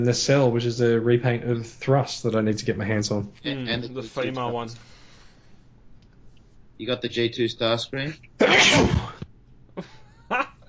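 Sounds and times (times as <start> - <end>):
speech: 0.0 - 5.0, 6.8 - 9.1
brief quiet breaths or voice fragments: 4.8 - 5.7
person sneezing loudly: 8.4 - 9.3.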